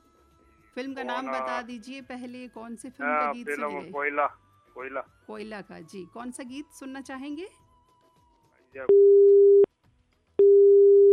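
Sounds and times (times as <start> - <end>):
speech: 0.8 - 7.6, 8.7 - 9.4
telephone busy tone after a call was cut off: 8.9 - 9.7, 10.4 - 11.1.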